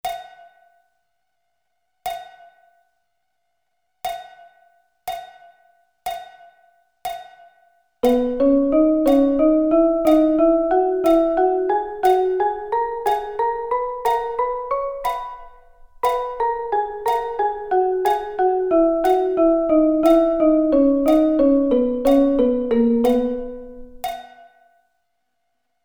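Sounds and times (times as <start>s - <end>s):
drum double sticking pattern: 8.0s - 24.4s.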